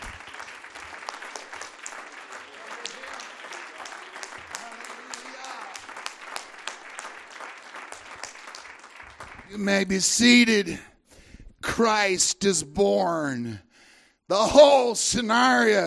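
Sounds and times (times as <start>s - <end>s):
church audience clapping after a prayer: 0.0s - 10.7s
speech: 9.5s - 10.9s, 11.8s - 13.7s, 14.3s - 15.8s.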